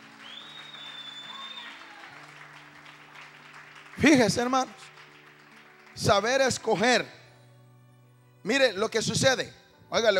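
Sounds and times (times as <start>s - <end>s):
congregation applauding in a church service: 0.0s - 7.0s
speech: 4.0s - 5.0s, 6.0s - 7.2s, 8.4s - 10.1s.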